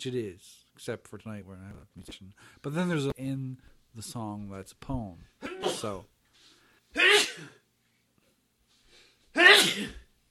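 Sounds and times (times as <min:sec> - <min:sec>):
speech: 0:00.0 - 0:06.1, 0:06.9 - 0:07.6, 0:09.4 - 0:10.0
loud sneezes: 0:05.4 - 0:06.0, 0:06.9 - 0:07.6, 0:09.3 - 0:10.1.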